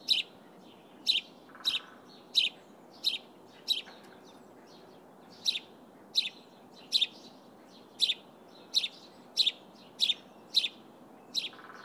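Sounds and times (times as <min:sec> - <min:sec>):
house sparrow Passer domesticus chirping: 0:00.0 - 0:00.3, 0:01.0 - 0:04.4, 0:05.3 - 0:07.2, 0:08.0 - 0:11.6
low background noise: 0:00.0 - 0:11.8.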